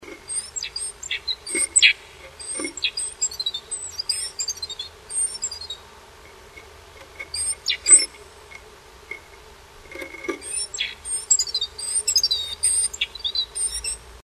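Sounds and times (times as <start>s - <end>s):
bird calls during nest building at a nest box: 0.0s - 14.2s.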